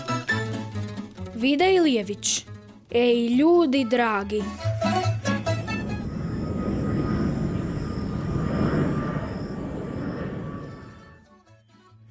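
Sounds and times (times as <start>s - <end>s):
speech: 1.4s - 4.7s
airplane engine droning overhead: 4.5s - 11.2s.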